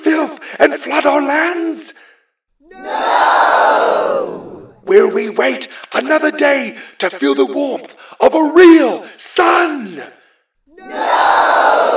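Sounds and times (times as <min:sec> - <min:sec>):
speech: 0:00.6 - 0:02.1, 0:04.9 - 0:10.2, 0:10.8 - 0:11.2
large crowd shouting in unison: 0:02.6 - 0:04.9, 0:10.7 - 0:11.9.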